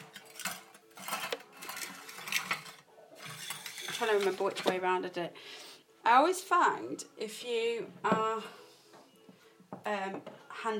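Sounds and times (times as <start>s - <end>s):
mixing bowl being moved, clinking and knocking: 0.0s - 4.8s
speech: 4.0s - 8.6s, 9.8s - 10.7s.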